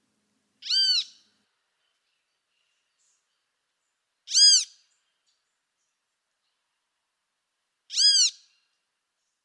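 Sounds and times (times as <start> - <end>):
great kiskadee giving harsh calls: 0.6 - 1.1.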